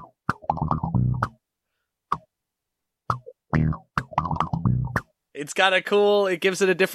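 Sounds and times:
palm-muted electric bass through an envelope filter: 0.0 - 1.3, 3.1 - 5.0
speech: 5.4 - 6.9.

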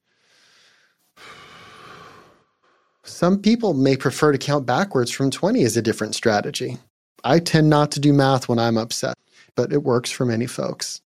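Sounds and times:
deep slow breaths taken to calm down: 0.0 - 3.1
speech: 3.1 - 11.0.

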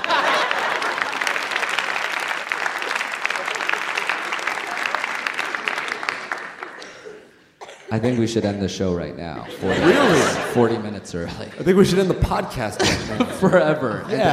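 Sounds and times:
audience applause: 0.0 - 7.3
laughter: 0.0 - 8.6, 9.3 - 14.3
speech: 7.9 - 14.3.

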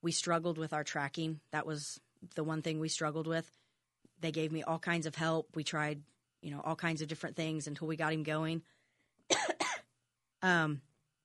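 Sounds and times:
speech: 0.0 - 3.6, 4.2 - 9.4, 10.4 - 10.9
person coughing: 9.3 - 9.9.

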